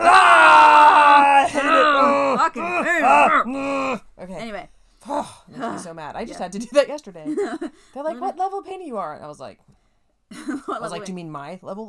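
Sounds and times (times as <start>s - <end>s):
several people screaming together in frustration: 0.0s - 4.0s
speech: 2.5s - 11.8s.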